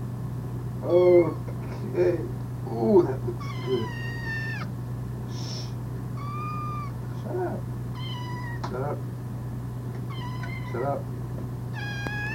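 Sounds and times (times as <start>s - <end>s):
constant low electrical hum: 0.0s - 12.3s
speech: 0.8s - 1.4s, 2.0s - 3.2s
domestic cat meowing: 3.4s - 4.7s, 6.2s - 7.0s, 7.9s - 8.7s, 10.0s - 11.0s, 11.7s - 12.3s.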